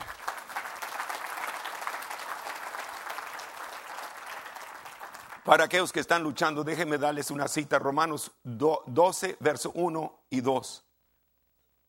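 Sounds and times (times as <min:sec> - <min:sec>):
church audience applauding: 0:00.0 - 0:05.8
speech: 0:05.5 - 0:10.8.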